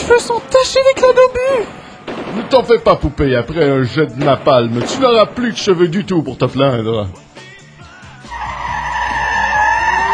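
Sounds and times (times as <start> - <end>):
truck engine rumbling: 0.0 - 10.1
speech: 0.1 - 7.2
truck tires screeching in a skid: 8.2 - 10.1.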